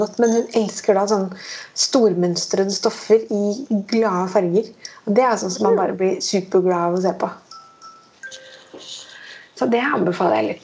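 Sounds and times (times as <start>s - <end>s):
speech: 0.0s - 7.4s, 9.6s - 10.6s
phone bedtime reminder alert tone of electronic notes: 7.5s - 8.8s.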